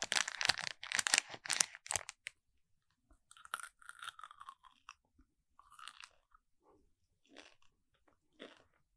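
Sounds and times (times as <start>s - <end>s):
M&M candies crunched and chewed in ASMR style: 0.0s - 2.3s, 3.3s - 8.9s.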